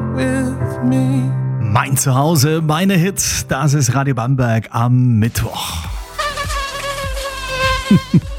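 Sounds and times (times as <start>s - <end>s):
speech: 0.2s - 6.0s, 7.9s - 8.2s
mosquito whine: 6.0s - 8.3s.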